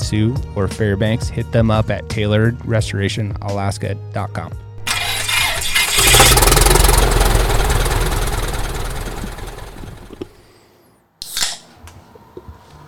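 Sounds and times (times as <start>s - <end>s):
speech: 0.1s - 4.6s
airplane engine cranking and starting: 4.8s - 10.3s
brief clatter and faint mechanical noises: 4.8s - 10.3s.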